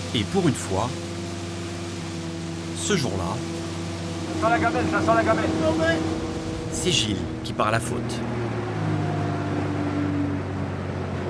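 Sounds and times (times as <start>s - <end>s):
boat engine droning as the boat passes: 0.0s - 11.2s
wash of water from a boat wave: 0.0s - 11.2s
speech: 0.1s - 1.1s, 2.8s - 3.6s, 4.4s - 8.5s
wind noise: 6.0s - 9.0s.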